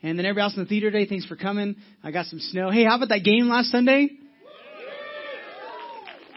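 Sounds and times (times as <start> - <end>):
speech: 0.0 - 4.2
audience cheering: 4.4 - 6.3
rising and falling whoops: 4.4 - 6.3.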